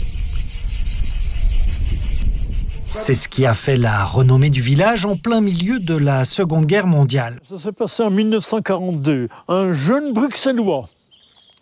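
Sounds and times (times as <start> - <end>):
cicada song: 0.0 - 7.3
speech: 3.0 - 11.0.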